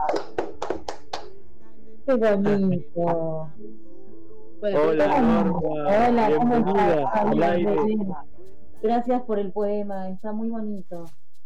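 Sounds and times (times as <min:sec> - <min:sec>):
small group clapping hands: 0:00.0 - 0:01.4
speech: 0:02.1 - 0:03.8, 0:04.6 - 0:11.2.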